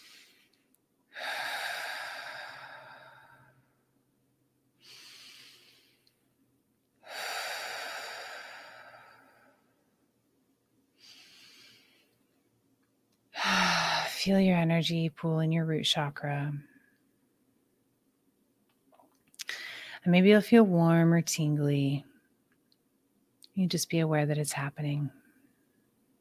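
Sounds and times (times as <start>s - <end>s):
slow deep breathing in through the nose and out through the mouth: 0.0s - 3.8s, 4.8s - 6.2s, 7.0s - 9.8s, 11.0s - 12.2s, 13.4s - 14.2s, 19.5s - 20.0s
speech: 14.2s - 16.7s, 20.1s - 22.1s, 23.6s - 25.2s.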